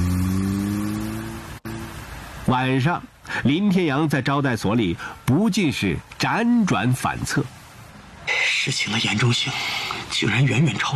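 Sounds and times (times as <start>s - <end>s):
sedan engine accelerating hard: 0.0s - 2.1s
speech: 2.5s - 7.6s, 8.6s - 10.9s.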